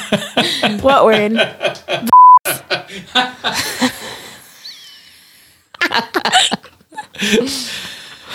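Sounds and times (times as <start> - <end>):
people laughing: 0.0 - 4.9, 5.8 - 8.3
speech: 0.1 - 2.1, 7.2 - 7.8
censor bleeps over a spoken word: 2.1 - 2.4.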